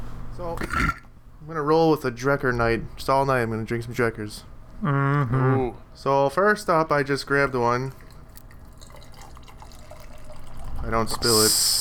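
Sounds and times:
speech: 0.4 - 8.0, 10.9 - 11.7
sour IPA beer pouring into a glass: 7.5 - 11.7.

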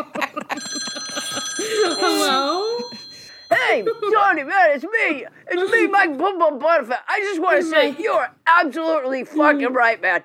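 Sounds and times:
telephone ringing with a steady high electronic tone: 0.5 - 4.6
speech: 3.7 - 10.2.

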